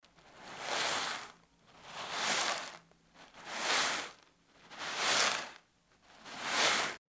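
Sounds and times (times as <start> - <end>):
pouring granular material: 0.3 - 5.6, 6.2 - 7.0.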